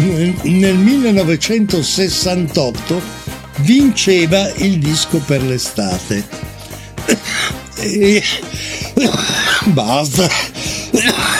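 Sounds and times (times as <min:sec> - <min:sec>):
speech: 0:00.0 - 0:11.3
person clearing throat: 0:07.0 - 0:11.3
person coughing: 0:07.0 - 0:11.3
person groaning with strain: 0:07.1 - 0:09.7.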